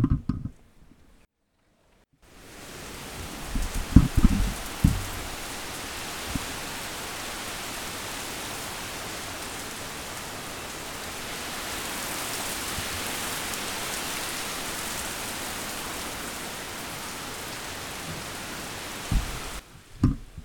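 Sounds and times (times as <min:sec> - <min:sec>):
knocks and taps: 0:00.0 - 0:00.6, 0:03.8 - 0:05.2, 0:19.1 - 0:19.4, 0:20.0 - 0:20.4
steady rain: 0:02.2 - 0:20.4.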